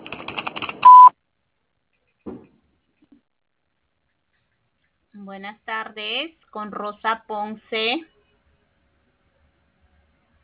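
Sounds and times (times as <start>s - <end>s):
answering machine beep: 0.8s - 1.1s
speech: 5.4s - 8.2s.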